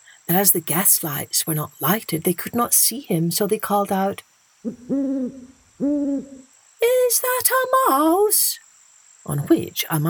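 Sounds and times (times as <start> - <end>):
speech: 0.3 - 8.6, 9.2 - 10.0
owl hooting: 4.6 - 8.1.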